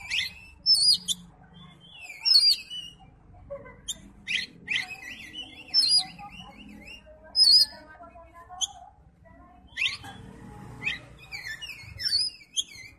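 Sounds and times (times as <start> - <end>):
Oriental magpie-robin whistled phrase with chirps and trills: 0.0 - 3.0, 3.9 - 7.8, 9.7 - 10.1, 10.8 - 12.9.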